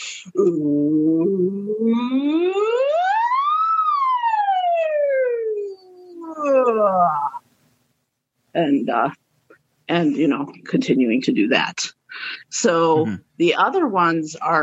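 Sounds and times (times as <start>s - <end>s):
speech: 0.2s - 2.7s, 8.6s - 9.2s, 9.9s - 14.6s
siren wail played from a phone: 2.0s - 7.4s.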